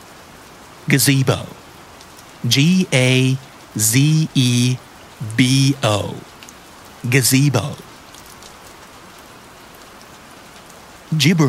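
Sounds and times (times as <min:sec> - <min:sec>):
steady rain falling at night: 0:00.0 - 0:11.4
speech: 0:00.9 - 0:01.6, 0:02.4 - 0:06.3, 0:07.0 - 0:07.9, 0:11.1 - 0:11.4.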